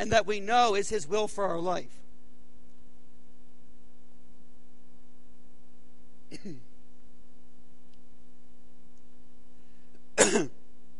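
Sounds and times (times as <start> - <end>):
speech: 0.0 - 2.0, 6.3 - 6.7, 10.3 - 10.6
faint room hum: 0.0 - 10.9
person clearing throat: 6.3 - 6.7, 10.2 - 10.6
person coughing: 6.3 - 6.7, 10.2 - 10.6.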